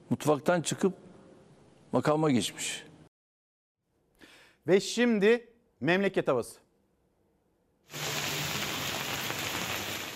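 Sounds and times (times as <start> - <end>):
speech: 0.1 - 1.1, 1.9 - 2.9, 4.7 - 6.6, 7.9 - 8.1
steady rain with pattering drops: 7.9 - 10.1.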